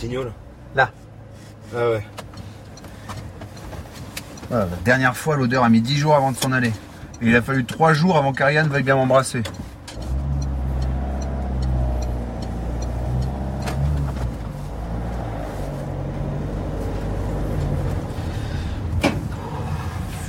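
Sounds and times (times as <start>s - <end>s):
speech: 0.0s - 1.0s, 1.7s - 2.2s, 4.5s - 9.7s
car engine drone while driving on a road: 0.0s - 20.2s
car whoosh: 10.0s - 20.2s.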